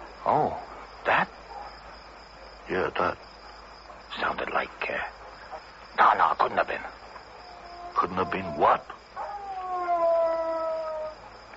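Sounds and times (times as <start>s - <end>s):
speech: 0.2s - 1.2s, 2.7s - 3.3s, 4.1s - 5.2s, 6.0s - 7.0s, 8.0s - 9.0s
wolf howling: 7.5s - 11.2s.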